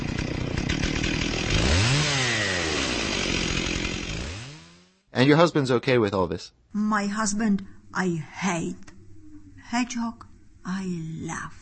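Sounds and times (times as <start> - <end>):
small petrol lawnmower engine roaring: 0.0 - 5.0
speech: 5.2 - 8.9, 9.7 - 11.6.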